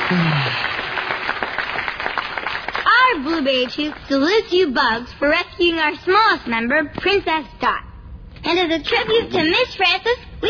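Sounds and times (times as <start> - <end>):
dense steady crowd applause: 0.0 - 3.1
speech: 0.1 - 0.7, 3.1 - 7.9, 8.5 - 10.4.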